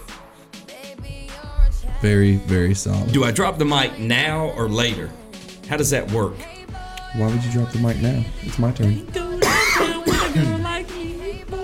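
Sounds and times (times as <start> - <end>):
speech: 2.0 - 6.5, 7.1 - 9.2, 10.4 - 10.7
person coughing in harsh bursts: 9.4 - 10.8.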